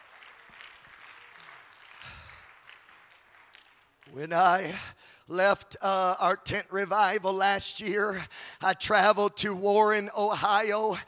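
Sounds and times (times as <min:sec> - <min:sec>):
congregation clapping hands at a church revival service: 0:00.0 - 0:04.8
speech: 0:04.1 - 0:11.0.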